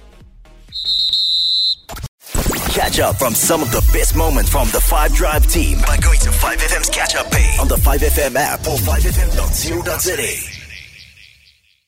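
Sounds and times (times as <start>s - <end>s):
referee's whistle blast ending a football match: 0.7s - 1.9s
speech: 2.8s - 10.5s.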